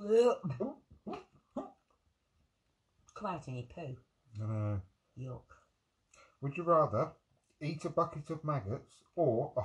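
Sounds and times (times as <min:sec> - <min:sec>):
speech: 0:00.0 - 0:00.8, 0:03.2 - 0:05.6, 0:06.4 - 0:09.6
person vocally imitating a cat or dog hacking up a furball: 0:00.0 - 0:01.8, 0:04.4 - 0:04.8.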